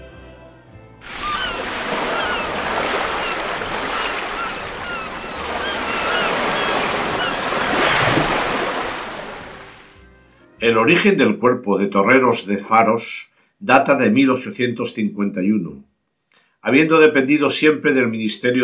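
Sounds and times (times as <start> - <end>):
sea waves washing against the coast: 1.0 - 9.9
speech: 10.6 - 15.9, 16.6 - 18.6.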